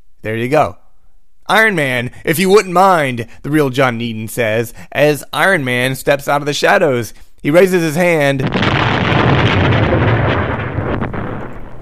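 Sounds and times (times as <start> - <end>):
speech: 0.2 - 0.8, 1.5 - 9.2
big explosion rumbling blast: 8.4 - 11.8.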